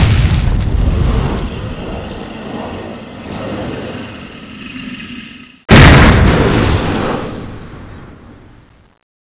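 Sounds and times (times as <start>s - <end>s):
scorpion appearing: 0.2s - 7.4s.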